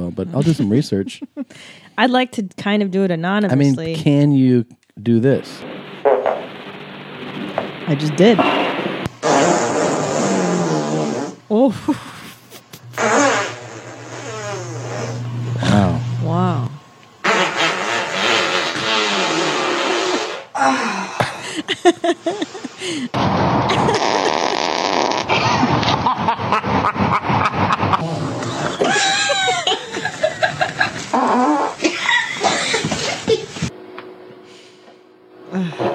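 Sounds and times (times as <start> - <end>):
laughter: 0.0 - 1.6, 11.7 - 12.9, 21.2 - 24.7, 25.5 - 31.2, 31.8 - 33.7
speech: 0.2 - 5.7, 7.9 - 8.6, 11.6 - 12.1
varied fart sound effects: 5.4 - 11.4, 12.7 - 16.1, 17.2 - 20.6, 23.1 - 29.0, 30.8 - 33.7.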